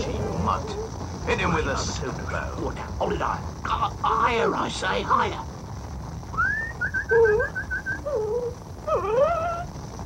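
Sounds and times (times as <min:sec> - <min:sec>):
speech: 0:00.5 - 0:05.5
dog whimpering: 0:07.1 - 0:09.7.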